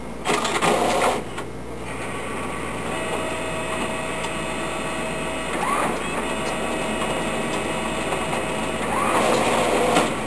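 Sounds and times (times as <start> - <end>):
photocopier running: 0.2 - 10.2.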